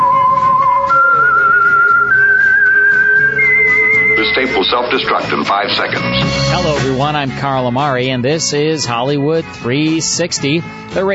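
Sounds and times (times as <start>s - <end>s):
lone whistled theme melody: 0.0s - 5.4s
low musical backing: 0.0s - 11.1s
speech: 4.3s - 11.1s.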